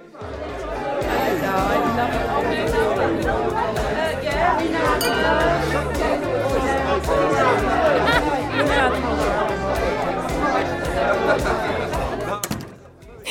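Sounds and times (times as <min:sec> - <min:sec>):
dense crowd of guests chattering indoors: 0:00.0 - 0:13.2
glasses clinking: 0:05.0 - 0:06.3
laughter: 0:05.0 - 0:12.3.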